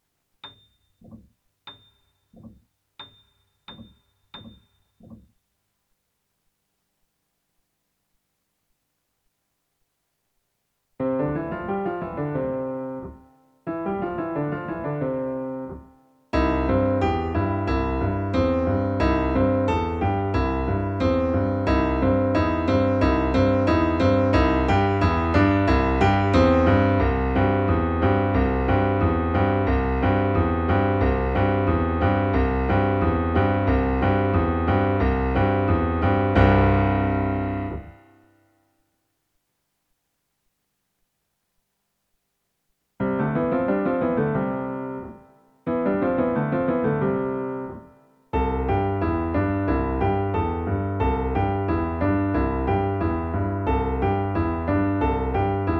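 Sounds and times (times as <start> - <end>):
slow piano backing: 11.0 - 38.1, 43.0 - 55.7.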